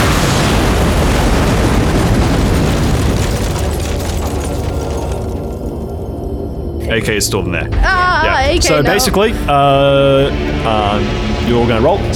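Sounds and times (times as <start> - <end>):
street-facing wall exploding inward in a loud blast: 0.0 - 5.7
speech: 7.0 - 12.1.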